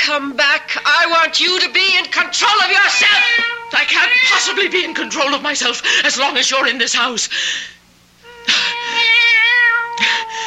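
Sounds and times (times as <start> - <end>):
speech: 0.1 - 7.8, 8.5 - 9.2
cat meowing: 2.8 - 5.4, 8.7 - 10.4.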